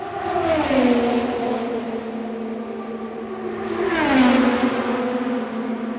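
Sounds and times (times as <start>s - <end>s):
Indy race cars passing at top speed: 0.0s - 5.9s.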